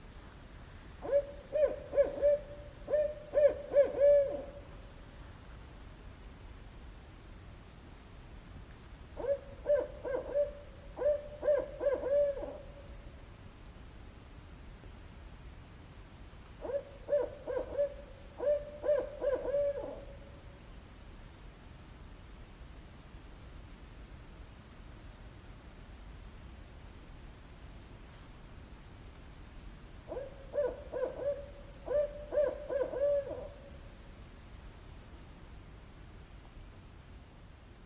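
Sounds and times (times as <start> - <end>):
soft hiss: 0.0 - 37.8
owls hooting: 1.0 - 4.6, 9.2 - 12.8, 16.6 - 20.1, 30.1 - 33.7.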